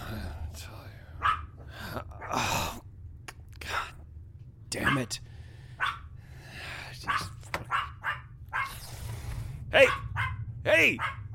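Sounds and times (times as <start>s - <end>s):
low rumble: 0.0s - 11.3s
dog barking: 1.2s - 1.6s, 4.8s - 5.1s, 5.8s - 6.1s, 7.1s - 8.8s, 9.8s - 11.3s
speech: 4.9s - 5.3s, 10.7s - 11.2s.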